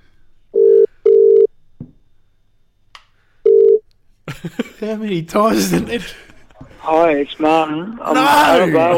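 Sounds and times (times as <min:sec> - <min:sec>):
telephone ringing tone on an outgoing call: 0:00.6 - 0:01.5, 0:03.4 - 0:03.8
laughter: 0:04.3 - 0:06.8, 0:08.1 - 0:08.9
speech: 0:04.4 - 0:08.9.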